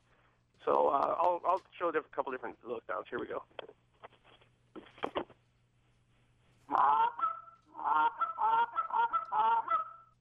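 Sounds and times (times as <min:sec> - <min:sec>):
speech: 0:00.6 - 0:03.8
goose call clucks: 0:06.7 - 0:10.1.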